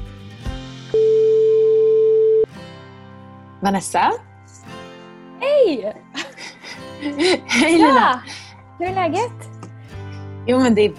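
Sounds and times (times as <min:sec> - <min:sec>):
ringback tone from an outgoing phone call: 0:00.9 - 0:02.5
speech: 0:03.6 - 0:04.3, 0:05.7 - 0:06.1, 0:07.0 - 0:09.5, 0:10.4 - 0:10.9
laughter: 0:06.2 - 0:08.4.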